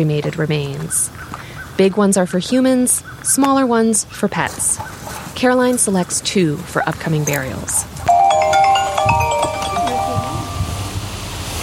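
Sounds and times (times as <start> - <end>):
speech: 0.0 - 7.9
burial sanctuary worker's mobile phone ringing with an electronic melody: 8.1 - 11.1.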